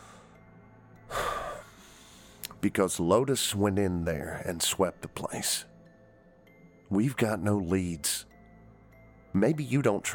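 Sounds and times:
deep breath drawn in sharply: 0:00.0 - 0:00.4, 0:01.1 - 0:02.4
speech: 0:02.6 - 0:05.7, 0:06.9 - 0:08.3, 0:09.3 - 0:10.1.

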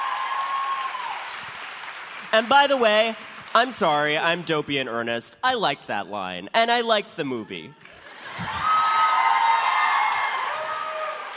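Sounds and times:
live audience cheering and whooping: 0:00.0 - 0:02.8, 0:07.7 - 0:11.3
speech: 0:02.3 - 0:08.6.

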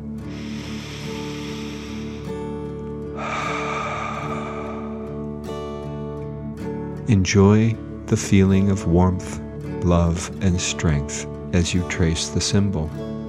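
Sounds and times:
deep breath in and out during guided relaxation meditation: 0:00.0 - 0:06.3
steady soft tonal music: 0:00.0 - 0:13.2
speech: 0:07.1 - 0:13.2.

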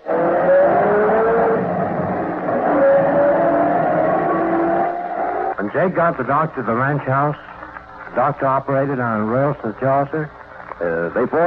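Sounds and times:
car engine hum driving off from a ranch house: 0:00.0 - 0:05.7
speech: 0:05.8 - 0:07.5, 0:08.2 - 0:11.4.

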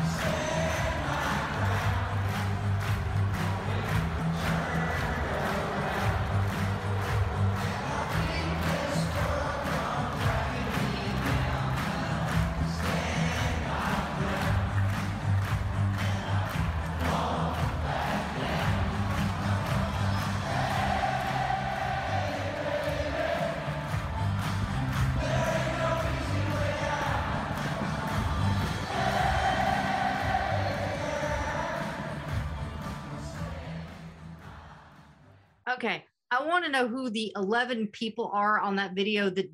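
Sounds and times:
stadium crowd of football fans singing along to a chorus: 0:00.0 - 0:35.4
speech: 0:35.8 - 0:36.0, 0:36.6 - 0:39.5.

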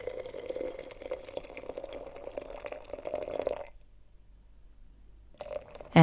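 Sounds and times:
water pouring from a kettle into a teapot: 0:00.0 - 0:03.8, 0:05.4 - 0:06.0.

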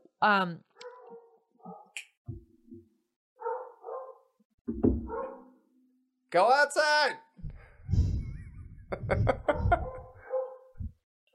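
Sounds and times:
speech: 0:00.2 - 0:00.7, 0:06.3 - 0:07.2
three dogs barking with high yappy and deep gruff barks: 0:00.8 - 0:02.0, 0:03.4 - 0:04.4, 0:05.1 - 0:05.6, 0:09.4 - 0:11.3
laughter: 0:07.9 - 0:10.3.

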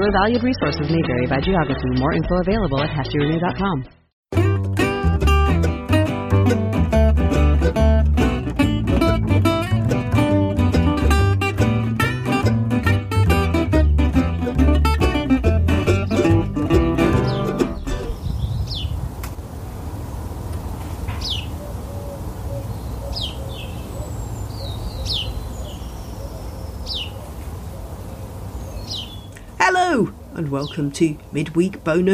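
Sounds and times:
speech: 0:00.0 - 0:04.4, 0:30.5 - 0:32.1
music: 0:00.0 - 0:18.2
several birds chirping and whistling outdoors: 0:17.1 - 0:19.2, 0:20.6 - 0:32.1.

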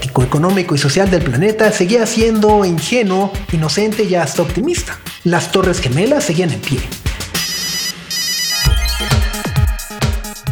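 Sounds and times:
speech: 0:00.2 - 0:07.1
Nokia 3310 mobile phone ringtone: 0:07.4 - 0:10.0.

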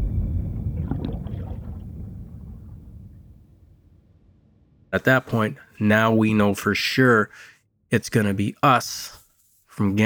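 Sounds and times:
icy ocean water sloshing and churning as a boat sinks: 0:00.0 - 0:03.4
low steady rumble: 0:00.0 - 0:04.9
speech: 0:04.9 - 0:09.2, 0:09.8 - 0:10.0.

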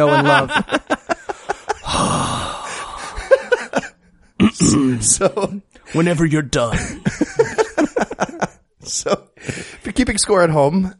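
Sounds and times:
speech: 0:00.0 - 0:00.8, 0:04.7 - 0:07.2, 0:08.9 - 0:10.9
laughter: 0:00.0 - 0:02.2, 0:03.0 - 0:04.1, 0:06.7 - 0:08.7
man making an exaggerated sigh: 0:01.8 - 0:03.4.

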